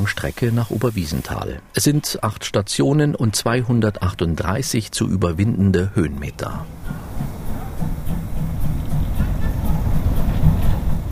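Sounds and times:
speech: 0:00.0 - 0:07.4
steam train with historic carriages rumbling as it departs: 0:06.3 - 0:11.0
faint rhythmic clanking of a departing steam train: 0:06.6 - 0:11.0.

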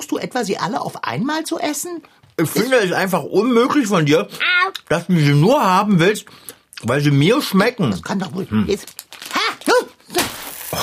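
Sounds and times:
speech: 0:00.2 - 0:09.0
bag of seeds crinkling and rustling: 0:08.8 - 0:10.8.

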